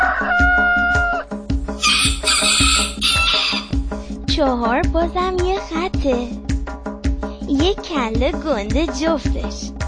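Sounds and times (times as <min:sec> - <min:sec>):
roosters crowing at dawn: 0:00.0 - 0:03.8
bouncy musical backing with a steady thumping beat: 0:00.0 - 0:09.8
speech: 0:04.4 - 0:06.4, 0:07.6 - 0:09.7.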